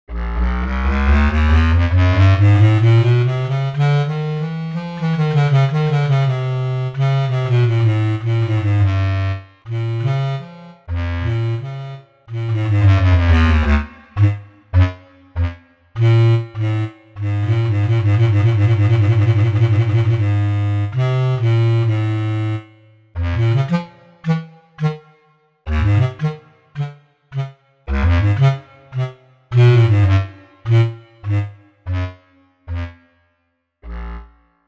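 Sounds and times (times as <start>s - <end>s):
bass clarinet: 0.1s - 33.1s, 33.8s - 34.4s.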